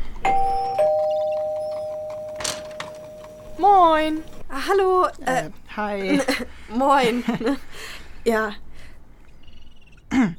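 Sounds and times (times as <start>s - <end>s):
two-tone electronic doorbell chime: 0.2s - 3.8s
speech: 3.6s - 8.6s.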